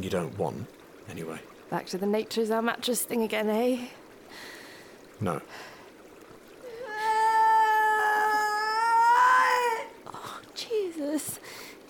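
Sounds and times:
speech: 0:00.0 - 0:04.5, 0:05.2 - 0:05.7
creature's distant shrill scream: 0:06.8 - 0:10.0.

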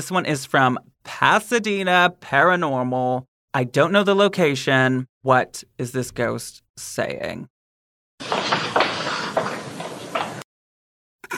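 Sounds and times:
speech: 0:00.0 - 0:07.5
brief scuffle: 0:08.2 - 0:10.4
faint dull footsteps in a ghost-hunting recording: 0:08.2 - 0:10.4.

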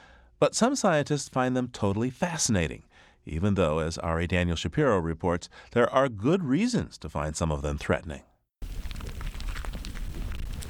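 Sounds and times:
speech: 0:00.4 - 0:08.3
black ground beetles scampering inside a plastic bag: 0:08.6 - 0:10.6.

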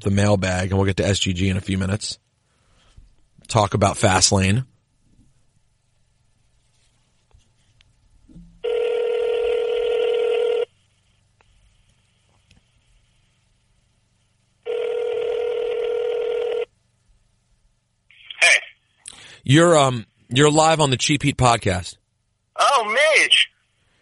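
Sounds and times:
speech: 0:00.0 - 0:02.2, 0:03.5 - 0:04.7, 0:19.5 - 0:22.0, 0:22.6 - 0:23.5
ringback tone of an outgoing phone call: 0:08.6 - 0:10.7, 0:14.7 - 0:16.7.

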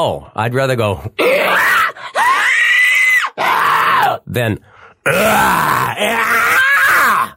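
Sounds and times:
speech: 0:00.0 - 0:01.7, 0:04.3 - 0:06.5
person imitating a monster with rasping inhaled screams: 0:01.2 - 0:04.2, 0:05.0 - 0:07.3
monster-like growl made by a human voice: 0:05.0 - 0:07.3.

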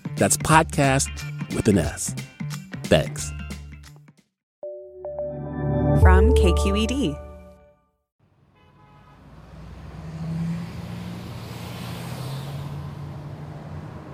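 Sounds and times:
speech: 0:00.2 - 0:02.3, 0:02.9 - 0:03.4, 0:06.0 - 0:07.2
freeway traffic roar with engines rumbling and passing: 0:08.3 - 0:14.1
car horn toot: 0:08.5 - 0:09.3.

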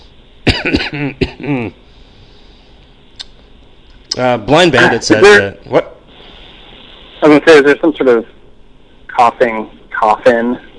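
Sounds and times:
hoarse throaty coughs: 0:00.4 - 0:01.8
speech: 0:00.6 - 0:01.8, 0:04.2 - 0:05.9, 0:07.2 - 0:08.4, 0:09.2 - 0:10.7.

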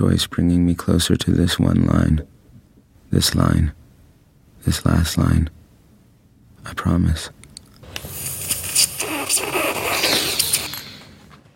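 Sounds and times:
speech: 0:00.0 - 0:02.4, 0:03.1 - 0:03.8, 0:04.6 - 0:05.6, 0:06.6 - 0:07.4
person snorting up a line of powder: 0:08.1 - 0:11.1.

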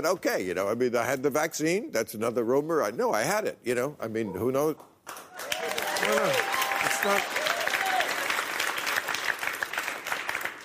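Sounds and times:
speech: 0:00.0 - 0:07.4
live audience applauding in a hall: 0:05.1 - 0:10.6.

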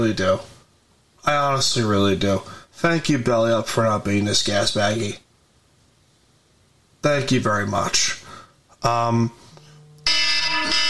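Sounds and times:
speech: 0:00.0 - 0:00.5, 0:01.2 - 0:05.2, 0:07.0 - 0:08.2, 0:08.8 - 0:09.4
loud harsh electronic alarm tones: 0:09.5 - 0:10.8.

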